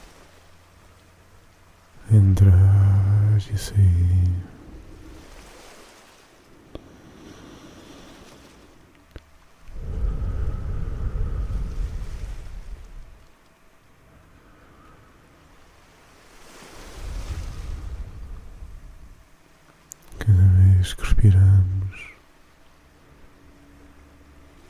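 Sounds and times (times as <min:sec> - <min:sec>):
ocean waves washing on shore: 0:00.0 - 0:19.9, 0:20.8 - 0:24.6
speech: 0:02.1 - 0:02.8, 0:03.4 - 0:04.6
small sharp clicks: 0:19.6 - 0:20.2.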